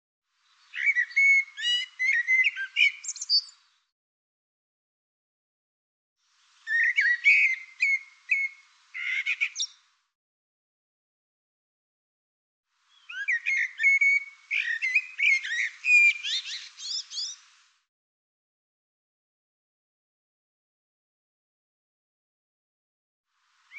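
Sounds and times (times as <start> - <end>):
bird singing bright phrases of varied whistles and chirps: 0.5 - 3.6, 6.6 - 9.8, 12.9 - 17.4.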